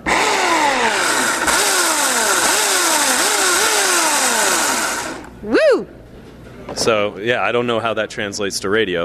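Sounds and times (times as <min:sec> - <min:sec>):
electric chainsaw cutting into ice: 0:00.0 - 0:05.3
speech: 0:06.8 - 0:09.0.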